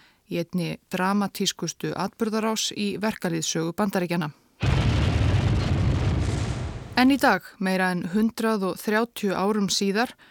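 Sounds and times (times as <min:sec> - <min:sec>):
speech: 0:00.3 - 0:04.4, 0:07.0 - 0:10.3
loud dense roar of rumbling debris: 0:04.6 - 0:07.2
bomb explosion: 0:04.6 - 0:07.3.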